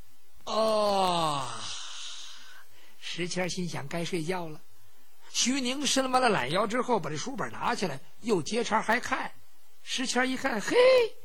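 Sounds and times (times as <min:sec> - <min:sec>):
man's voice imitating a long groaning yawn: 0:00.5 - 0:02.6
speech: 0:03.2 - 0:04.7, 0:05.3 - 0:11.2.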